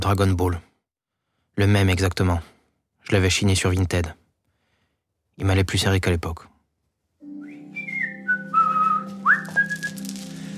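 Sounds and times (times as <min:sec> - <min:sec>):
speech: 0:00.0 - 0:00.7, 0:01.6 - 0:04.2, 0:05.4 - 0:06.5
person whistling a short tune: 0:07.3 - 0:10.2.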